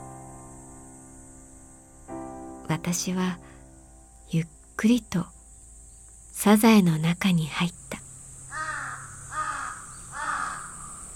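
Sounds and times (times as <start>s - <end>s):
faint steady hiss: 0.0s - 11.1s
speech: 2.7s - 3.6s, 4.3s - 5.4s, 6.4s - 8.0s
crow cawing loudly: 8.5s - 11.1s.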